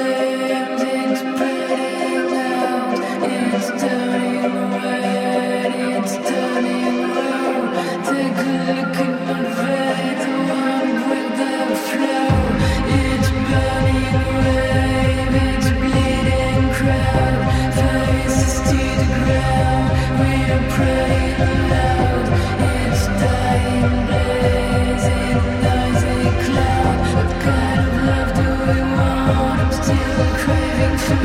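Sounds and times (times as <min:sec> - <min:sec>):
music track with dense layered instruments and sustained tones: 0:00.1 - 0:31.2
heavy bass line: 0:12.3 - 0:31.2.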